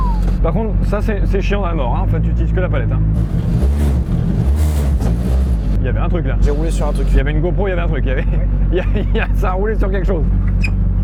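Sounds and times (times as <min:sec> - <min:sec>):
speech: 0:00.4 - 0:04.1, 0:05.8 - 0:10.8
rally car engine starting and revving: 0:02.2 - 0:07.3
laughter: 0:07.9 - 0:09.6.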